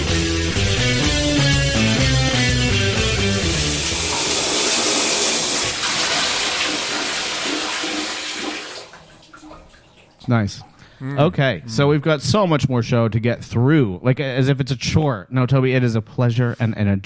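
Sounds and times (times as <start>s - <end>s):
shower water running: 0.6s - 10.4s
speech: 10.3s - 17.0s.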